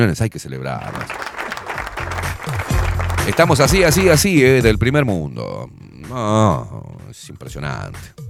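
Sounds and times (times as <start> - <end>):
speech: 0.0 - 1.2, 3.2 - 8.2
group clapping: 0.8 - 4.6.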